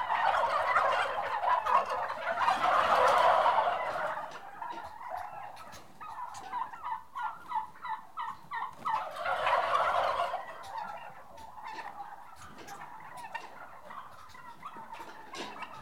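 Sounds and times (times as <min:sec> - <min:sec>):
six-month-old livestock turkeys gobbling: 0:00.0 - 0:15.8.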